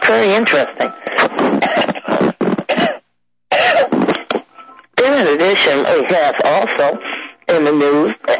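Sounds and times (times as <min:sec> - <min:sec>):
speech: 0:00.1 - 0:01.4, 0:05.2 - 0:08.3
person coughing: 0:01.2 - 0:04.4.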